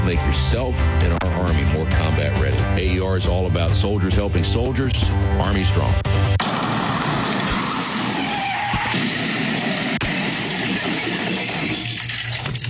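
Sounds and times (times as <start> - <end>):
speech: 0.1 - 7.0
car crash sound effect: 6.4 - 12.6
screeching: 6.5 - 12.6
clattering debris: 8.9 - 12.6.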